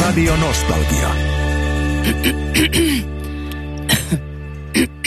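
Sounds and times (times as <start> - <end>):
speech: 0.2 - 1.4, 2.0 - 3.2
person coughing in a throat lozenge advert: 2.0 - 3.2, 3.8 - 5.0.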